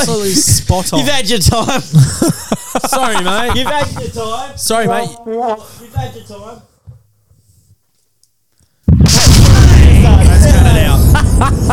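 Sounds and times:
laughter: 0:00.0 - 0:04.4, 0:10.7 - 0:11.7
speech: 0:00.0 - 0:06.7, 0:10.1 - 0:11.7
cannon firing with a loud boom and heavy rumbling roar: 0:08.9 - 0:11.7.

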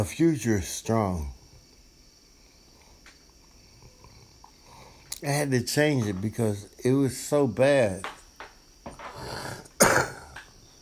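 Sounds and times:
speech: 0:00.0 - 0:01.4, 0:05.2 - 0:08.2
smoker's raspy phlegmy cough: 0:09.1 - 0:10.5.

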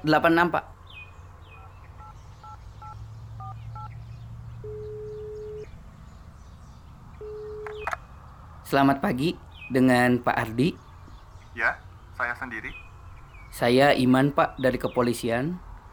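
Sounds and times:
speech: 0:00.0 - 0:00.8, 0:08.7 - 0:10.8, 0:11.6 - 0:12.8, 0:13.6 - 0:15.7
telephone keypad tones: 0:04.6 - 0:05.7, 0:07.2 - 0:08.0.

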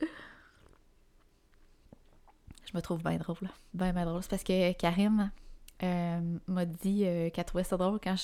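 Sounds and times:
person sipping a drink: 0:00.4 - 0:02.6
speech: 0:02.7 - 0:08.2.

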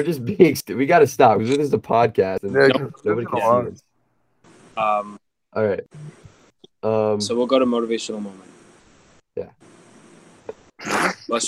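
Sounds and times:
speech: 0:00.0 - 0:03.9, 0:04.8 - 0:08.6, 0:09.4 - 0:09.7, 0:10.8 - 0:11.4
sneeze: 0:10.8 - 0:11.3.

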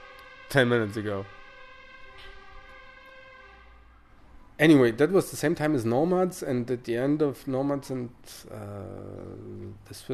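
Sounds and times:
fire engine siren wailing: 0:00.0 - 0:05.7
speech: 0:00.5 - 0:01.4, 0:04.6 - 0:10.1.

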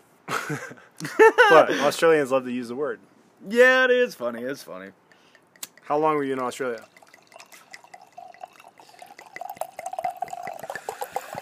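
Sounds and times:
speech: 0:00.5 - 0:05.0, 0:05.9 - 0:07.0
red wine pouring into a glass: 0:05.6 - 0:11.4.

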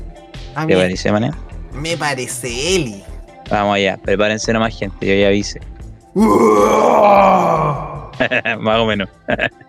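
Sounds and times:
speech: 0:00.6 - 0:09.6
harsh growled vocal from a heavy song: 0:00.7 - 0:01.0, 0:06.2 - 0:09.6
laughter: 0:00.7 - 0:01.0, 0:08.2 - 0:09.6.

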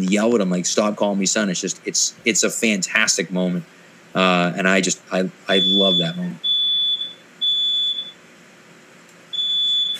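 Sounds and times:
speech: 0:00.0 - 0:06.5
smoke alarm beeping: 0:05.5 - 0:08.2, 0:09.3 - 0:09.9.

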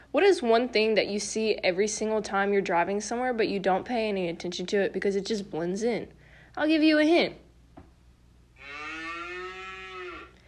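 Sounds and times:
speech: 0:00.1 - 0:07.4
cow mooing: 0:08.6 - 0:10.4.

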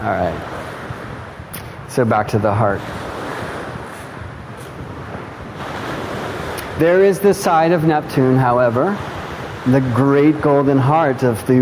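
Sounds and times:
speech: 0:00.0 - 0:00.6, 0:01.9 - 0:03.0, 0:06.8 - 0:11.6
gusty wind buffeting the microphone: 0:00.0 - 0:11.6
ocean waves crashing: 0:00.0 - 0:11.6.

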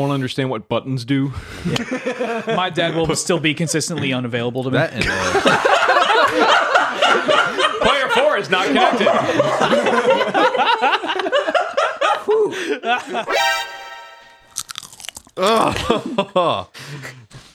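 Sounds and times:
speech: 0:00.0 - 0:07.7, 0:08.4 - 0:11.0, 0:12.3 - 0:13.8, 0:15.4 - 0:17.2
laughter: 0:01.6 - 0:03.1, 0:05.0 - 0:13.3, 0:15.7 - 0:16.7
ASMR chewing and crunching of a chip in the mouth: 0:14.4 - 0:15.8.

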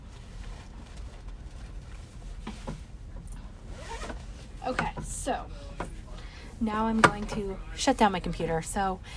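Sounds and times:
backpack compartment zipper being closed: 0:03.7 - 0:04.2
speech: 0:04.7 - 0:05.6, 0:06.6 - 0:09.1.

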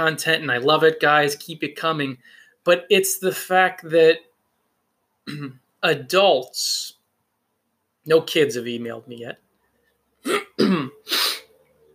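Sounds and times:
speech: 0:00.0 - 0:04.3, 0:05.3 - 0:07.0, 0:08.0 - 0:09.4, 0:10.2 - 0:11.3
person clearing throat: 0:05.3 - 0:05.6, 0:10.2 - 0:11.4.

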